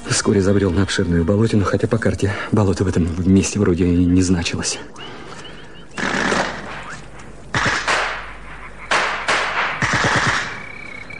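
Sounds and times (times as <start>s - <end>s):
speech: 0.1s - 5.2s
automatic gunfire near a marsh at dusk: 6.0s - 6.7s, 7.5s - 8.2s, 8.9s - 10.6s.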